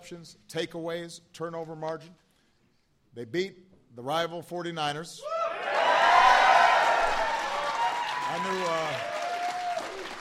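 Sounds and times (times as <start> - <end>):
speech: 0.1 - 2.2, 3.1 - 5.3, 8.3 - 9.1
cheers from the crowd: 5.2 - 10.2
audience applause from a sizable crowd: 5.7 - 10.2.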